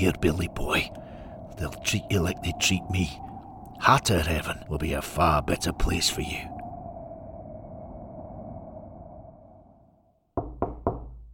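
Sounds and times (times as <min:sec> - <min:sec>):
speech: 0:00.0 - 0:01.0, 0:01.6 - 0:03.2, 0:03.8 - 0:06.5
steady low hum: 0:00.0 - 0:10.2
knocking on the shut wooden door of a program hut: 0:10.4 - 0:11.3.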